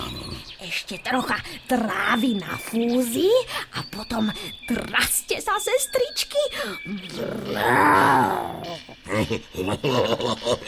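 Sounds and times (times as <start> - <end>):
animal growling: 0.0 - 0.5, 7.0 - 9.0
speech: 0.6 - 10.6
laughter: 8.9 - 10.6.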